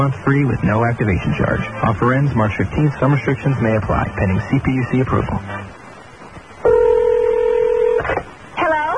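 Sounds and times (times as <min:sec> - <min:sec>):
speech: 0:00.0 - 0:05.8
dual-pitched telephone keypad tone: 0:06.6 - 0:08.0.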